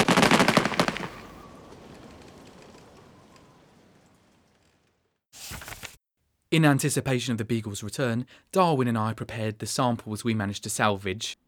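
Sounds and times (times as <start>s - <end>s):
volley of gunfire fired on command: 0.0s - 4.3s
speech: 6.5s - 11.4s.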